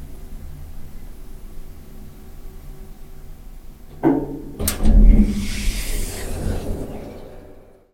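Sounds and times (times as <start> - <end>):
elevator going up: 3.9 - 7.9.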